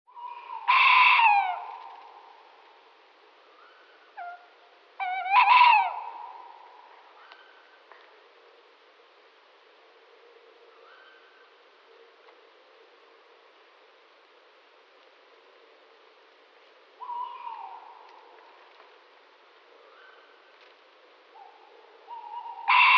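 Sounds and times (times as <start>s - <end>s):
tawny owl calling: 0.1s - 2.5s, 3.5s - 7.7s, 17.0s - 18.4s, 19.8s - 20.4s, 21.3s - 22.9s.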